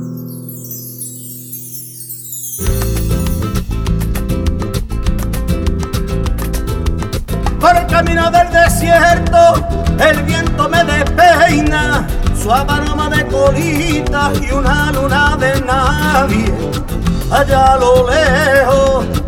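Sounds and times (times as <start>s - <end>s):
tribute band playing a cover song: 2.6s - 19.2s.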